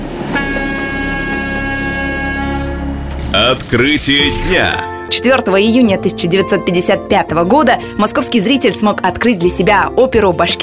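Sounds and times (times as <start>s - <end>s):
train horn blaring: 0.3s - 3.0s
speech: 3.4s - 10.6s.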